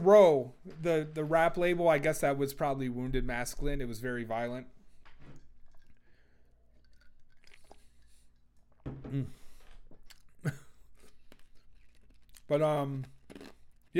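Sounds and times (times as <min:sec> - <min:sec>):
speech: 0:00.0 - 0:04.8, 0:09.1 - 0:09.4, 0:12.5 - 0:13.1
person chewing ice: 0:05.4 - 0:08.8, 0:09.5 - 0:13.9.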